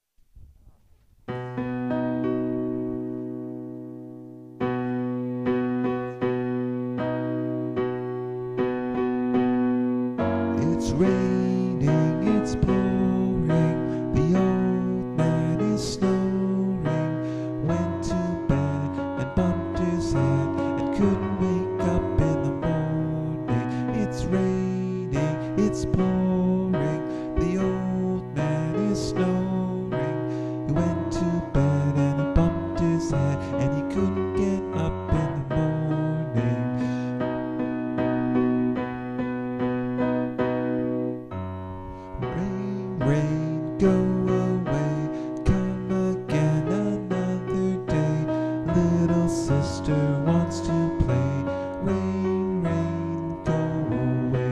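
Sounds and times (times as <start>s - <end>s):
major key song: 1.3s - 54.5s.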